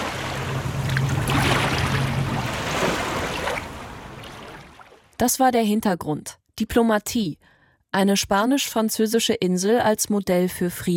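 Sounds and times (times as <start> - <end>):
river water flowing calmly toward the sea: 0.0 - 5.1
speech: 5.2 - 10.9.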